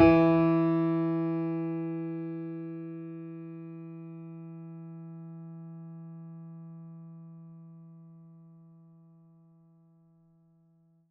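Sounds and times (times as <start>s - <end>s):
mini grand piano: 0.0s - 6.2s.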